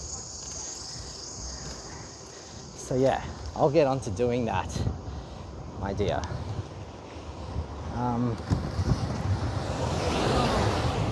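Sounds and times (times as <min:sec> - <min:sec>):
heavy wind buffeting: 0:00.0 - 0:11.1
speech: 0:02.9 - 0:05.0, 0:05.8 - 0:06.5, 0:08.0 - 0:08.7
truck roaring past outdoors: 0:09.4 - 0:11.1.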